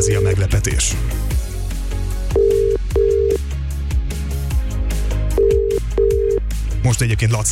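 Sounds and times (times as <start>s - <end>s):
speech: 0.0s - 1.4s, 6.8s - 7.5s
low busy background of music-like sound: 0.0s - 7.5s
telephone line ringing with a steady electronic tone: 2.4s - 3.4s, 5.4s - 6.4s.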